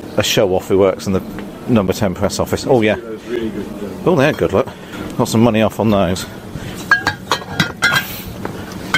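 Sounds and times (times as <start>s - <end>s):
speech: 0.2s - 6.5s
glass wine bottles clinking together while packed into a bag: 6.8s - 8.2s.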